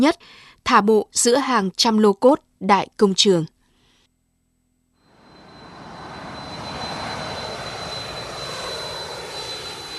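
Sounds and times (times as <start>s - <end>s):
speech: 0.0s - 3.5s
thin high whine: 3.7s - 9.9s
aircraft engine roaring at a busy Asian airport: 5.0s - 9.9s.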